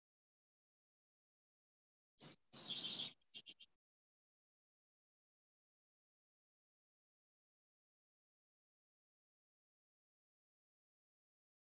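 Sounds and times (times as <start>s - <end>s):
bird singing: 2.2s - 3.8s.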